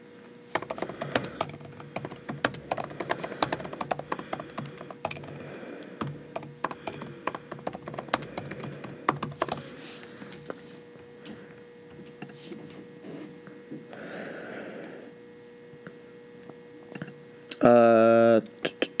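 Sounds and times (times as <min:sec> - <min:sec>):
faint hum: 0:00.0 - 0:18.9
rapid typing on a computer keyboard: 0:00.5 - 0:09.8.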